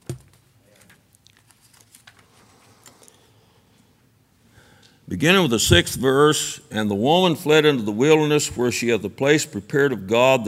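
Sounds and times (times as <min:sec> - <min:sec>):
sheet of paper rustling as a page is handled: 0:00.1 - 0:02.9
speech: 0:05.1 - 0:10.4.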